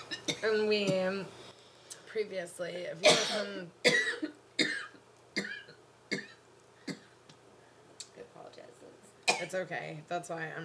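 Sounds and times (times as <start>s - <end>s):
speech: 0.4s - 1.4s, 2.1s - 4.4s, 9.4s - 10.6s
harsh chesty coughing fit: 3.0s - 7.1s.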